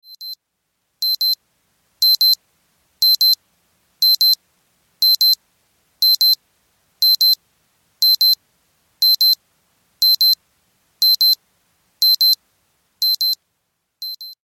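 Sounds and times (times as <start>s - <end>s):
wristwatch alarm: 1.0s - 1.4s, 2.0s - 2.4s, 3.0s - 3.4s, 4.0s - 4.4s, 5.0s - 5.4s, 6.0s - 6.4s, 7.0s - 7.4s, 8.0s - 8.4s, 9.0s - 9.4s, 10.0s - 10.4s, 11.0s - 11.4s, 12.0s - 12.4s, 13.0s - 13.4s, 14.1s - 14.4s.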